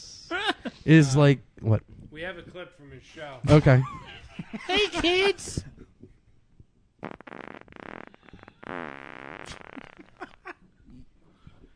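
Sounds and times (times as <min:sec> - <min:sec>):
speech: 0:00.8 - 0:05.8, 0:07.0 - 0:07.7
loud raspy fart noises: 0:07.0 - 0:11.0.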